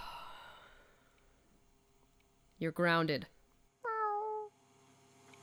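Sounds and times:
speech: 2.6s - 3.3s
single short cat meow: 3.9s - 4.5s.

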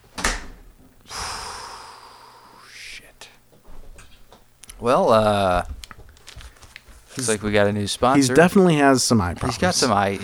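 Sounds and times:
door opening and closing: 0.0s - 0.7s
speech: 4.8s - 5.7s, 7.2s - 10.2s.

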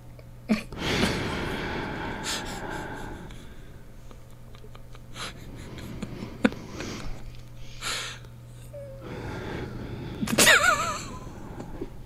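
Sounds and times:
faint steady hum: 0.0s - 12.0s
heavy noisy breathing close to the microphone: 0.6s - 12.0s.

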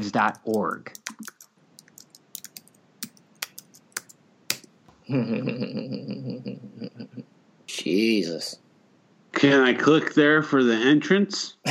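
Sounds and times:
speech: 0.0s - 1.0s, 5.1s - 8.6s, 9.4s - 11.6s
computer keyboard keys tapped while typing a web address: 0.2s - 4.7s.

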